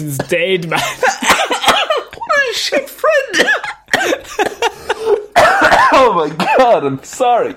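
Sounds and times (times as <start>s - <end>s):
speech: 0.0s - 1.9s, 2.5s - 4.7s, 6.1s - 7.5s
person coughing: 0.2s - 2.1s, 3.3s - 6.8s
person laughing: 0.7s - 2.6s, 4.0s - 5.4s.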